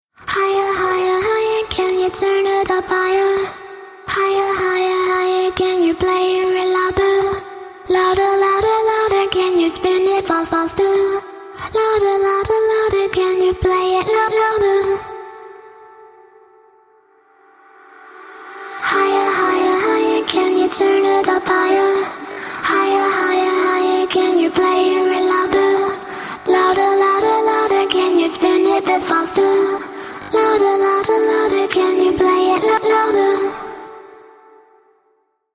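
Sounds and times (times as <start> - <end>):
a cappella dance vocals at 126 BPM in G: 0.1 - 16.6, 18.2 - 34.9.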